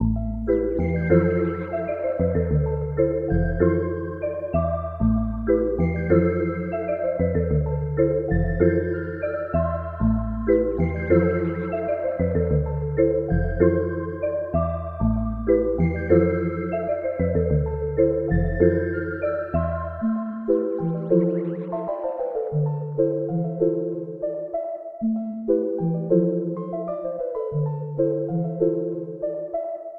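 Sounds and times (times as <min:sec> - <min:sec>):
melody in A minor: 0:00.0 - 0:29.9.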